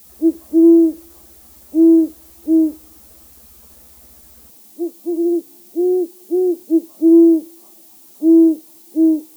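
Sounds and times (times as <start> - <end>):
great horned owl hooting: 0.0 - 7.4.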